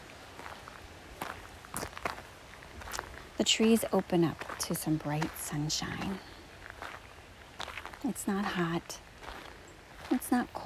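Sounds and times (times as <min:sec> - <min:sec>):
footsteps crunching along an outdoor path by a creek: 0:00.0 - 0:10.6
speech: 0:03.4 - 0:06.3, 0:08.0 - 0:09.1, 0:10.1 - 0:10.6.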